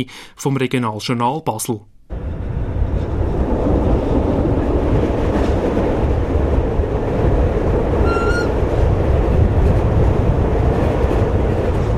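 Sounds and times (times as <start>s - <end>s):
speech: 0.0s - 1.9s
red-and-cream 1980s narrow-gauge train on 75 cm track rumbling and rattling, windows open: 2.1s - 11.9s
high squeal from narrow-gauge train: 8.0s - 8.6s.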